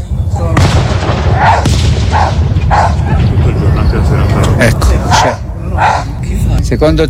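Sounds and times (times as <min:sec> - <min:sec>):
loud continuous booming fireworks: 0:00.4 - 0:05.6
sharp firework bursts cracking: 0:00.6 - 0:03.3
dog barking in a small field: 0:01.4 - 0:03.2, 0:05.1 - 0:06.2
speech: 0:06.7 - 0:07.0.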